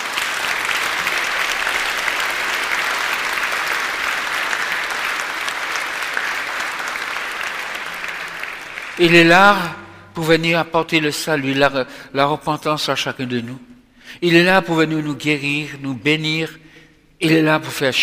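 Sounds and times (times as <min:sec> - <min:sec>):
large gathering applauding: 0:00.0 - 0:09.7
speech: 0:09.0 - 0:16.6, 0:17.2 - 0:18.0.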